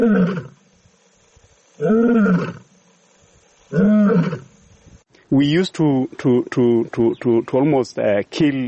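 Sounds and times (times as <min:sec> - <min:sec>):
lion roaring in deep drawn-out bellows: 0:01.8 - 0:02.7, 0:03.7 - 0:04.5
person speaking: 0:05.2 - 0:08.6.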